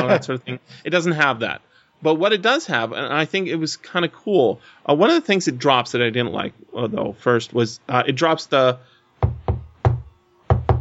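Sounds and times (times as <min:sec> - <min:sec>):
speech: 0:00.0 - 0:09.4
solid knocks on a surface: 0:09.2 - 0:10.7.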